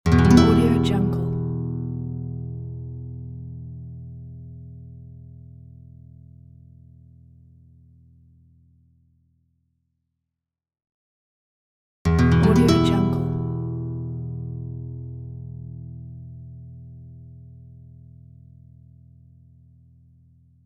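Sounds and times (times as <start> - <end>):
western classical guitar chord: 0.1 - 6.2, 12.1 - 18.8.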